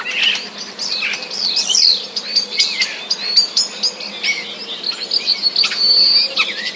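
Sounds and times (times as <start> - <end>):
Common starlings singing with borrowed sparrow sounds: 0.0 - 6.7.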